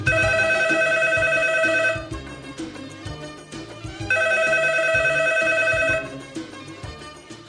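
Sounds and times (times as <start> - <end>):
telephone ringing for an incoming call: 0.1 - 2.1, 4.1 - 6.1.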